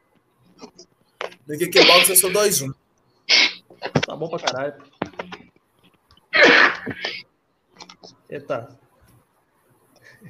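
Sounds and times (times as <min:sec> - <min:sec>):
speech: 0:01.5 - 0:02.8, 0:04.2 - 0:05.0, 0:06.8 - 0:07.2, 0:08.3 - 0:08.8
person murmuring: 0:01.6 - 0:02.7
person sneezing: 0:01.7 - 0:02.6, 0:06.4 - 0:07.2.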